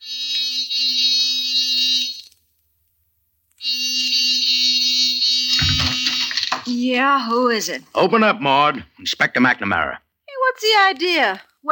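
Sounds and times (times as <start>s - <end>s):
door buzzer: 5.2s - 6.5s
speech: 6.7s - 11.6s.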